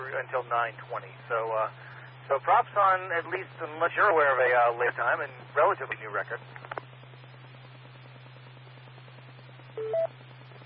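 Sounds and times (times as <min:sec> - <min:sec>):
steady low hum: 0:00.0 - 0:10.6
speech: 0:00.2 - 0:06.6
phone ringing with a two-tone electronic chirp: 0:09.8 - 0:10.1.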